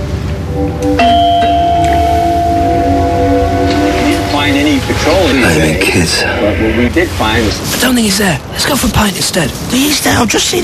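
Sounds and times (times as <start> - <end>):
doorbell ringing: 0.8 - 5.4
speech: 5.0 - 10.6.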